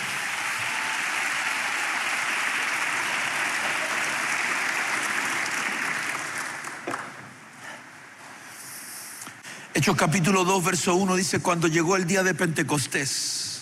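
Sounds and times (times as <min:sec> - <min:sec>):
audience clapping: 0:00.0 - 0:07.4
speech: 0:09.8 - 0:13.4.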